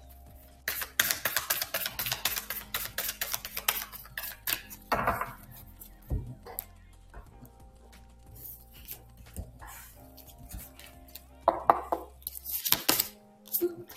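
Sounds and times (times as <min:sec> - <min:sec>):
advice card deck being shuffled and a card drawn: 0:00.7 - 0:04.8, 0:08.4 - 0:11.3, 0:12.0 - 0:13.7.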